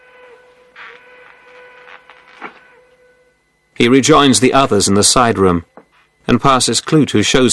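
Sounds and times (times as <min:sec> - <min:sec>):
faint train whistle: 0:00.0 - 0:03.8
speech: 0:03.8 - 0:05.7, 0:06.3 - 0:07.5.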